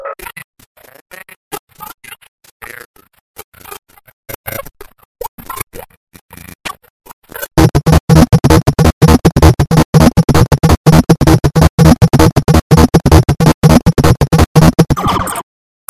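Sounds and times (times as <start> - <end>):
circuit bent loops: 7.4 - 15.1.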